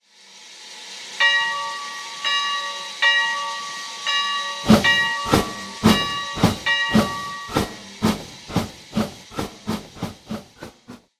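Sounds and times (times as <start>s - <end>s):
steam bell: 1.2s - 8.0s.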